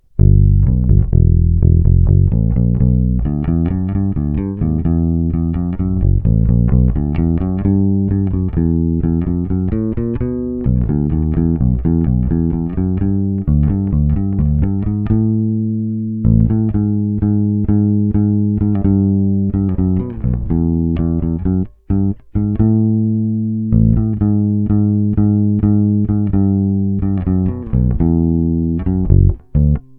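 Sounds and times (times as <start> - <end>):
Precision bass through original pickup: 0.0 - 29.9.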